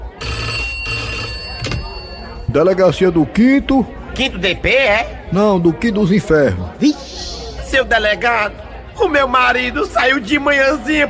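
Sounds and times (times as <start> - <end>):
telephone ringing with electronic trill: 0.1 - 2.5
speech: 2.6 - 11.0.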